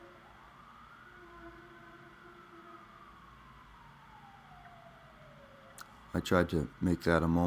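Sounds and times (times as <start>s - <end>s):
emergency vehicle siren wailing outside as it passes: 0.0s - 6.5s
low rumble of traffic: 0.0s - 7.4s
speech: 6.2s - 7.4s.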